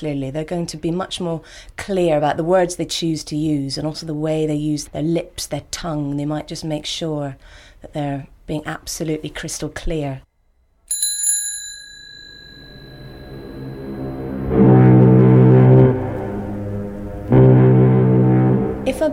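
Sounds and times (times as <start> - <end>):
speech: 0.0 - 10.3
bicycle bell ring: 10.9 - 14.1
loud deep foghorn blasts: 13.2 - 19.1.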